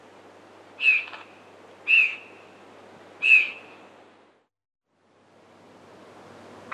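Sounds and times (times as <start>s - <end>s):
Fawn-breasted bowerbird uttering short bright whistled notes: 0.8s - 1.2s, 1.9s - 2.4s, 3.2s - 3.8s.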